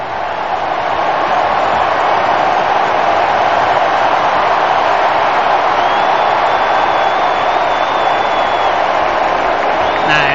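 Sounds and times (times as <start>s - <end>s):
huge stadium crowd cheering and applauding for a substitute in Kansas City: 0.0s - 10.3s
faint whistle: 5.8s - 8.9s, 9.8s - 10.3s.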